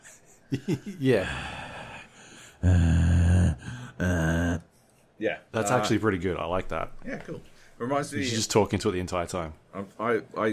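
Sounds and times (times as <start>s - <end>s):
speech: 0.5s - 1.6s, 2.6s - 2.9s, 4.0s - 4.3s, 5.2s - 10.5s
gasping: 1.1s - 4.7s
heavy breathing into microphone: 1.2s - 2.6s.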